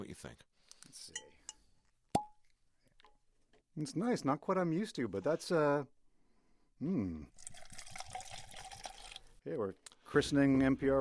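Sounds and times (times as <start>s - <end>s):
speech: 0.0s - 1.4s, 3.8s - 6.0s, 6.8s - 7.5s, 9.4s - 10.9s
bourbon whiskey poured from a bottle into a glass: 7.3s - 9.4s.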